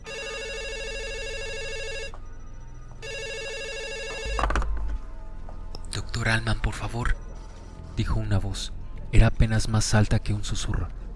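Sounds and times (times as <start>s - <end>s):
telephone ringing: 0.0s - 4.6s
speech: 6.3s - 7.2s, 8.0s - 11.0s.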